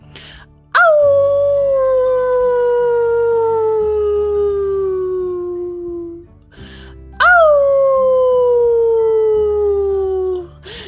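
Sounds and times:
low steady drone: 0:00.0 - 0:10.8
werewolf howling at the moon: 0:00.8 - 0:06.2, 0:07.2 - 0:10.5.

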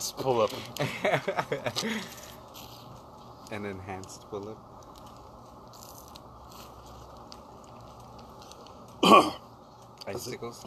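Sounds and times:
speech: 0:00.0 - 0:02.3, 0:03.5 - 0:04.7, 0:10.1 - 0:10.6
laughter: 0:00.8 - 0:02.1
person coughing after chugging a drink: 0:09.0 - 0:09.4.

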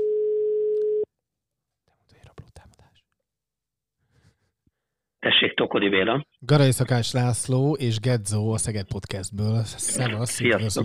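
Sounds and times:
telephone ringing tone: 0:00.0 - 0:01.1
speech: 0:05.7 - 0:10.8.

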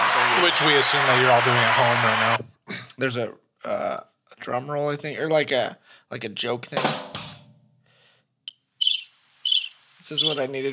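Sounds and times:
speech: 0:00.4 - 0:07.1, 0:10.1 - 0:10.7
cricket chirping sound effect: 0:08.8 - 0:10.7.

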